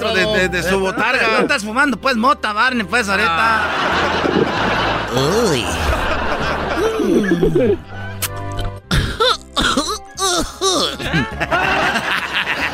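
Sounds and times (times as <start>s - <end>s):
speech: 0.0s - 6.0s, 7.0s - 8.0s, 10.8s - 12.0s
people chuckling and laughing: 3.2s - 8.2s, 10.2s - 12.7s
throat clearing: 8.9s - 11.0s
harsh coughing: 8.9s - 11.4s.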